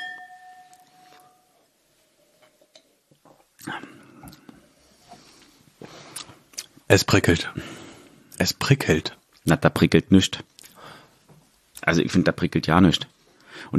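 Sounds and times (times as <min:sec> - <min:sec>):
glasses of red wine clinking in a toast: 0:00.0 - 0:01.4
speech: 0:03.6 - 0:04.0, 0:06.9 - 0:07.8, 0:08.7 - 0:10.5, 0:11.9 - 0:13.7.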